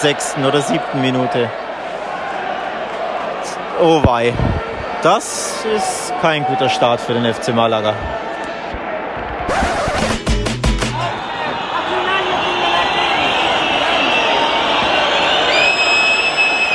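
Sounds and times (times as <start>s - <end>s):
speech: 0.0s - 1.6s, 3.8s - 8.3s
large football stadium crowd roaring: 0.0s - 16.7s
football home fans whistling in disapproval at a home defeat: 10.8s - 16.7s.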